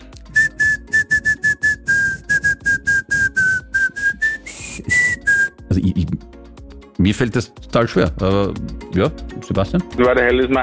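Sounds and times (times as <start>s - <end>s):
person whistling a pop song melody: 0.2s - 5.7s
speech: 7.0s - 10.6s.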